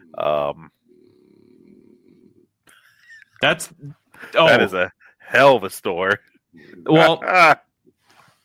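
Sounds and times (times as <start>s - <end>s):
French bulldog snoring: 0.0s - 2.6s
speech: 0.1s - 0.8s, 3.4s - 7.6s.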